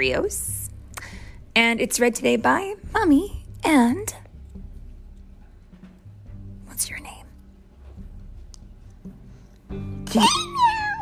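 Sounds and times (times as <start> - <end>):
speech: 0.0 - 0.6, 1.6 - 4.2, 9.7 - 10.5
child imitating a cat meow: 10.1 - 11.0.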